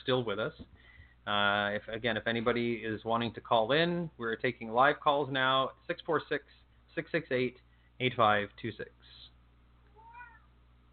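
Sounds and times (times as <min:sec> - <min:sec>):
speech: 0:00.0 - 0:09.3
steady low hum: 0:00.0 - 0:10.9
cat meowing: 0:09.9 - 0:10.5.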